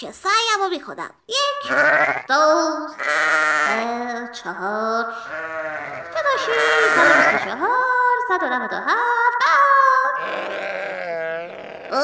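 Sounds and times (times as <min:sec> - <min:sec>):
speech: 0:00.0 - 0:09.6
sheep bleating: 0:01.6 - 0:04.0, 0:05.2 - 0:07.6, 0:10.0 - 0:12.0.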